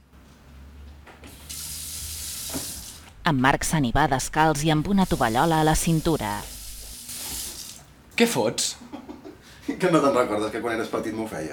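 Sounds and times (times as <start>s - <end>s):
quiet room hum: 0.0s - 11.5s
kitchen tap running: 1.4s - 3.1s, 4.9s - 7.9s
speech: 3.3s - 6.5s, 8.2s - 8.8s, 9.8s - 11.5s.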